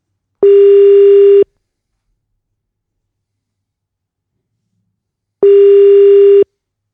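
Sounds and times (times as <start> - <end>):
telephone ringing tone on an outgoing call: 0.4 - 1.4, 5.4 - 6.4.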